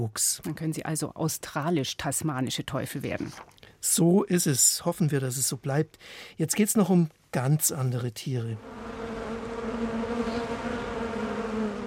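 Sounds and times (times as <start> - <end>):
speech: 0.0 - 9.0
swarm of bees buzzing: 8.6 - 11.8.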